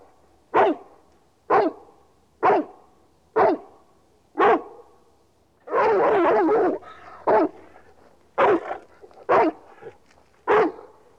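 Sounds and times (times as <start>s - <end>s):
dog giving sharp barks: 0.5s - 0.9s, 1.5s - 2.8s, 3.4s - 3.8s, 4.4s - 4.9s, 5.7s - 11.1s.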